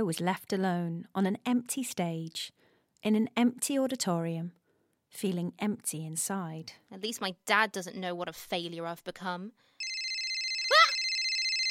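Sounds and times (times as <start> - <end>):
speech: 0.0 - 9.7
telephone ringing with electronic tone: 9.8 - 11.6.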